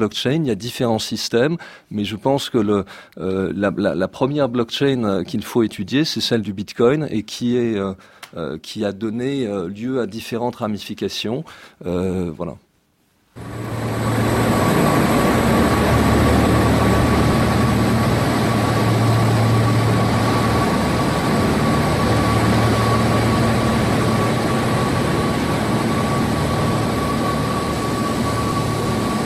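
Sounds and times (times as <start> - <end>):
speech: 0.0 - 12.6, 13.4 - 13.8
cryptocurrency mining farm machines whirring roar in China: 13.4 - 29.2
thin high constant whine of cryptocurrency mining machines: 13.4 - 29.2.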